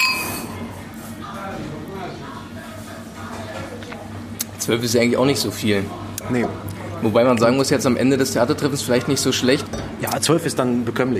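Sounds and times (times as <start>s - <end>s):
wine glasses clinking in a toast: 0.0s - 0.6s
indistinct murmur: 0.0s - 10.3s
speech: 4.7s - 11.1s.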